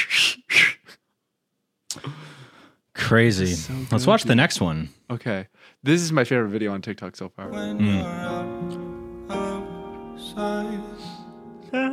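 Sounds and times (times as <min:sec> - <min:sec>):
child's first attempt at whistling with breathy airy blows: 0:00.0 - 0:01.0
speech: 0:03.1 - 0:08.4.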